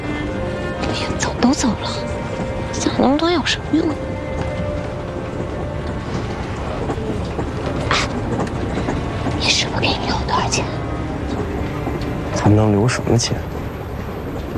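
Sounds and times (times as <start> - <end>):
train rolling along the rails: 0.0 - 14.5
speech: 0.9 - 2.1, 2.8 - 4.1, 12.5 - 13.5.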